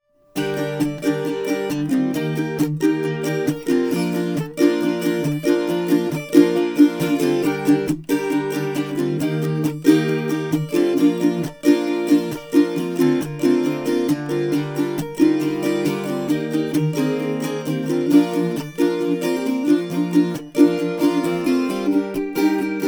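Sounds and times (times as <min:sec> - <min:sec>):
12-string bubinga guitar: 0:00.0 - 0:22.8.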